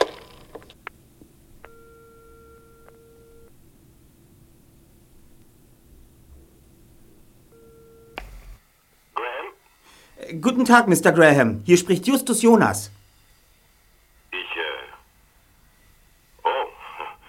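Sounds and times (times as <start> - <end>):
telephone ringing tone on the line: 1.6 - 3.5, 7.5 - 8.2
telephone line hiss: 8.2 - 17.2
speech: 10.3 - 13.0.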